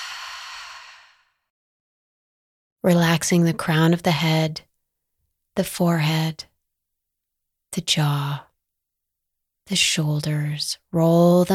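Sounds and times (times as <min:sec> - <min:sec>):
slow soft exhale during a guided relaxation breathing exercise: 0:00.0 - 0:01.4
speech: 0:02.8 - 0:04.7, 0:05.6 - 0:06.5, 0:07.7 - 0:08.5, 0:09.7 - 0:11.5.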